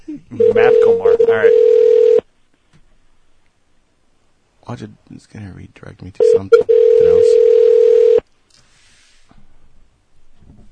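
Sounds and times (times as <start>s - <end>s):
speech: 0.3s - 1.8s, 4.8s - 7.6s
short loud telephone tone: 0.4s - 2.2s, 6.2s - 8.2s.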